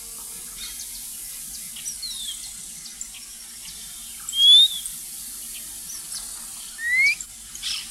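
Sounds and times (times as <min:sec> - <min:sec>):
soft high bird chatter: 0:00.5 - 0:07.9
white monjita Xolmis irupero giving clear rising whistles: 0:04.4 - 0:04.8, 0:06.8 - 0:07.2.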